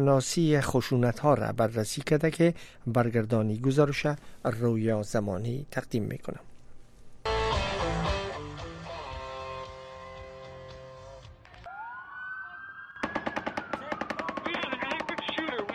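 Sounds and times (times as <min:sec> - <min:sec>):
speech: 0:00.0 - 0:06.5
loud music at a music festival in Las Vegas Nevada: 0:07.3 - 0:11.7
rising siren wail: 0:11.6 - 0:15.4
automatic gunfire: 0:13.0 - 0:15.7.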